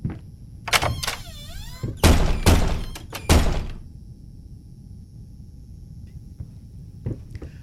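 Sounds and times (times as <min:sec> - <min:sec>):
faint hum: 0:00.0 - 0:07.6
creaking door hinge: 0:00.7 - 0:03.8
door latch clicks: 0:00.7 - 0:03.8
heavy thunks of doors: 0:00.7 - 0:03.8.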